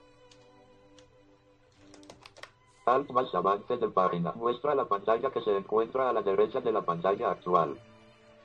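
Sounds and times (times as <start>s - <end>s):
computer keyboard keys clicking: 0.2s - 1.1s, 1.7s - 2.6s
speech: 2.9s - 7.9s.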